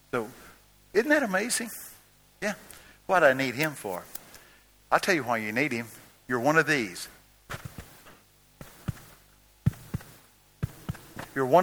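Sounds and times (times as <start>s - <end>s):
speech: 0.1s - 4.2s, 4.9s - 7.2s, 11.4s - 11.6s
heartbeat: 7.5s - 11.4s.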